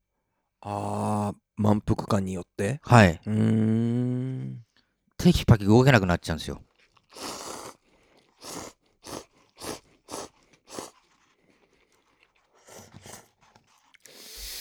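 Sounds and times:
speech: 0.6s - 7.4s
person chewing instant cup noodles: 6.6s - 14.4s.

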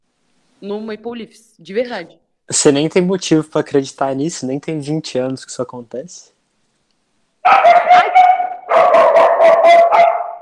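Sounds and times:
speech: 0.6s - 6.4s, 7.4s - 10.1s
dog barking and yipping excitedly: 7.4s - 10.4s.

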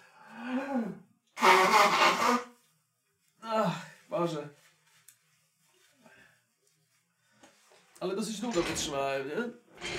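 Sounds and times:
person blowing nose hard: 0.8s - 2.6s
speech: 8.3s - 9.9s.

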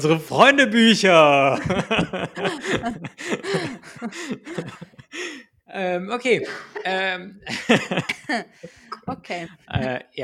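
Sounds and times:
speech: 0.0s - 10.2s
laughter: 1.3s - 5.4s, 6.3s - 9.9s
throaty phlegmy wet coughs: 1.6s - 5.1s, 6.3s - 7.0s, 7.8s - 9.3s.

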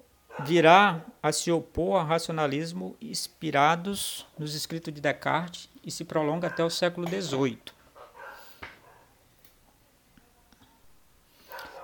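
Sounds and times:
dog barking: 0.3s - 0.6s, 6.4s - 6.8s, 8.0s - 9.1s, 11.4s - 11.8s
speech: 0.4s - 7.8s.

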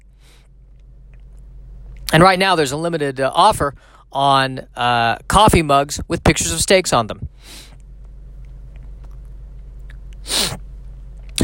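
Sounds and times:
low steady hum: 0.0s - 11.4s
speech: 2.1s - 7.7s
sneeze: 10.3s - 10.6s.

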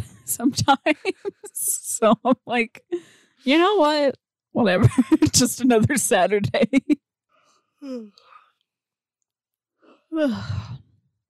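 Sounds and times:
speech: 0.3s - 7.0s, 7.8s - 8.3s, 10.1s - 10.8s
soft short vocal noises: 7.8s - 8.4s
breathy yawn with drawn-out exhale: 10.1s - 10.8s.

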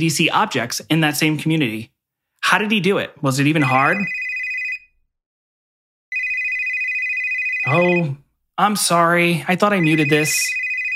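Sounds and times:
speech: 0.0s - 4.2s, 7.7s - 10.6s
electronic phone ringtone trilling with high-pitched warbling ring: 3.6s - 4.9s, 6.1s - 8.2s, 9.6s - 10.9s.

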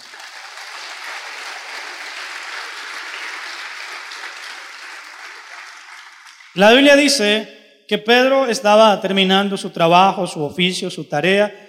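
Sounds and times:
crowd applauding in a large room: 0.0s - 6.8s
speech: 6.6s - 11.6s.

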